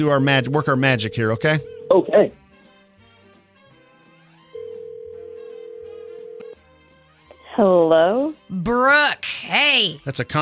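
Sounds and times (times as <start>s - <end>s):
speech: 0.0s - 2.4s, 7.6s - 10.4s
soft music: 0.0s - 10.4s
telephone ringback tone of an outgoing call: 0.4s - 2.3s, 4.6s - 6.6s.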